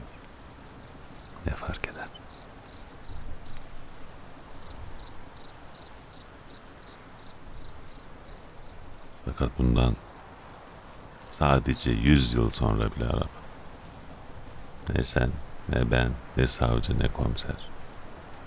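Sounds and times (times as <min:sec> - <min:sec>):
rain falling: 0:00.0 - 0:18.4
speech: 0:09.4 - 0:10.0, 0:11.4 - 0:13.4, 0:14.9 - 0:17.7.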